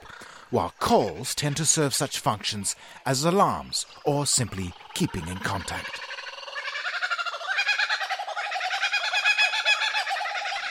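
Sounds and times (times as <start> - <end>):
speech: 0.5 - 6.2
laughing kookaburra laughing call: 5.2 - 10.6.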